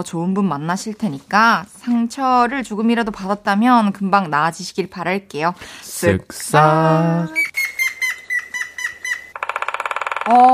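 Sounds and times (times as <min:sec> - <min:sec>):
speech: 0:00.0 - 0:07.4, 0:10.3 - 0:10.5
cartoon-style woodpecker squeaky bird calls: 0:07.3 - 0:10.3.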